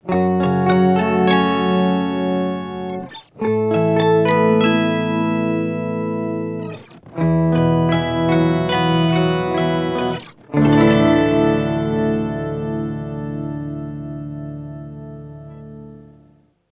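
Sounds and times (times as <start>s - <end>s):
harmony in two octaves: 0.0s - 16.6s.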